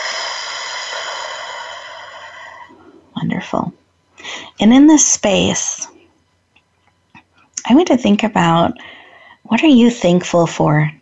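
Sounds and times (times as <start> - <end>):
deep breath in through the nose and out through the mouth: 0.0 - 3.1
speech: 3.4 - 3.8, 4.6 - 5.9, 7.7 - 10.9.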